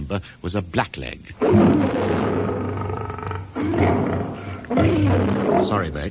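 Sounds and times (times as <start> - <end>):
speech: 0.1 - 2.6, 4.7 - 6.1
lion roaring: 1.4 - 6.1.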